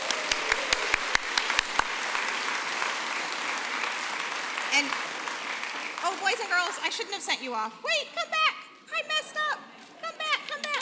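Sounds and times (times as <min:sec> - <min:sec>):
audience applauding: 0:00.0 - 0:07.1
speech: 0:04.8 - 0:05.0, 0:06.1 - 0:09.2.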